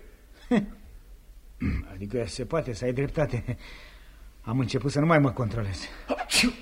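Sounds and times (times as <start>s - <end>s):
speech: 0.5s - 0.8s, 1.6s - 6.5s
loud sneeze: 6.1s - 6.5s.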